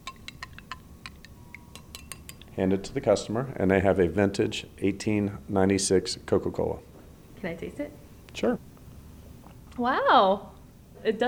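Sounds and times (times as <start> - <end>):
spoon stirring a drink in a glass: 0.0 - 2.6
faint hum: 0.0 - 11.2
speech: 2.6 - 8.7, 9.8 - 11.2.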